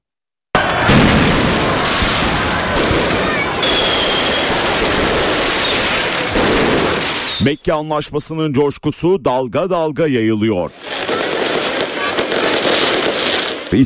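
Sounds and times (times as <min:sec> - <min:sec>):
fireworks exploding over a capital city's night-time celebration: 0:00.6 - 0:07.6, 0:10.7 - 0:13.8
speech: 0:07.4 - 0:10.8.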